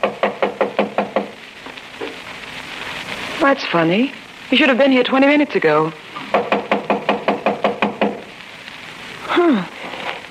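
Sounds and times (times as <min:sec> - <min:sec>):
sharp knocking on a door: 0:00.0 - 0:01.4, 0:06.3 - 0:08.2
speech: 0:03.4 - 0:06.0.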